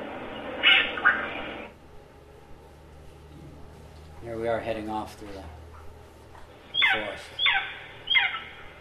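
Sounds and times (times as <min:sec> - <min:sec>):
Alarum cacique bird calling: 0:00.6 - 0:01.7, 0:06.7 - 0:08.7
speech: 0:04.2 - 0:05.6, 0:06.9 - 0:07.6.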